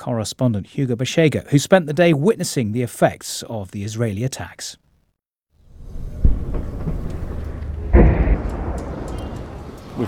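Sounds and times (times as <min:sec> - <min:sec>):
speech: 0:00.0 - 0:04.8
deep rumbling explosions heard from a hospital in southern Lebanon: 0:05.6 - 0:10.0
steady low rumble: 0:05.7 - 0:10.0.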